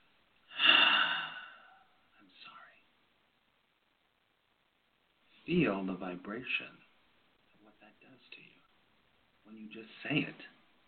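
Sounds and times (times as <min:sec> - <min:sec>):
deep breath drawn in sharply through the nose: 0:00.5 - 0:01.8
speech: 0:05.5 - 0:06.8, 0:09.5 - 0:10.6.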